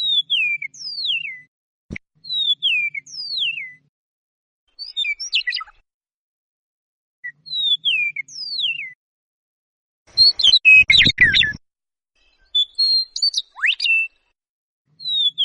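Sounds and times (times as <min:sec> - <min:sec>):
Eastern Meadowlark song with whistles, buzzy chatter and metallic trill: 0:00.0 - 0:01.5, 0:02.2 - 0:03.9, 0:04.7 - 0:05.8, 0:07.2 - 0:09.0, 0:10.1 - 0:11.6, 0:12.2 - 0:15.4.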